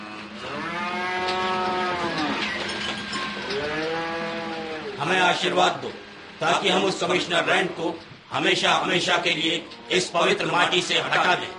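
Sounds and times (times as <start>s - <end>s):
buffalo mooing: 0.0s - 2.6s, 3.4s - 5.1s, 9.5s - 11.5s
speech: 5.1s - 11.5s.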